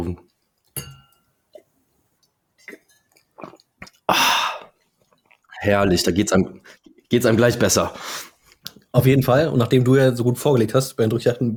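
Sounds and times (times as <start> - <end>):
speech: 0.0 - 0.3, 5.6 - 8.3, 8.9 - 11.5
two glasses of red wine clinking in a toast: 0.8 - 1.3
quiet sipping and swallowing of wine: 2.6 - 5.6.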